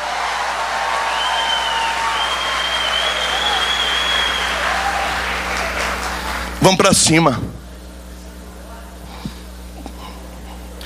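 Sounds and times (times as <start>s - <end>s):
church congregation clapping during a service: 0.0s - 7.0s
speech: 6.6s - 7.6s.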